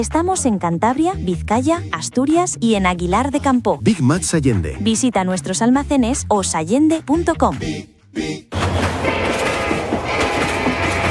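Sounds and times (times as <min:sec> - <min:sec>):
speech: 0:00.0 - 0:08.9
train passing on rails: 0:08.6 - 0:11.1.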